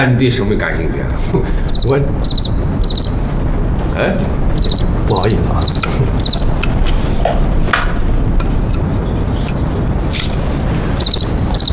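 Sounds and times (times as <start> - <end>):
speech: 0.0 - 3.1, 4.0 - 6.1
steady hiss of noise: 0.0 - 11.7
cricket chirping in short rapid trills: 1.6 - 3.7, 4.3 - 6.8, 10.9 - 11.7.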